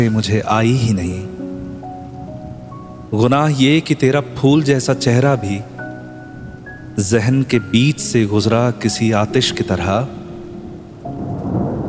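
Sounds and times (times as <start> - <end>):
speech: 0.0 - 1.3, 3.1 - 5.7, 7.0 - 10.2
steady rain: 10.6 - 11.8
thunder: 11.2 - 11.8.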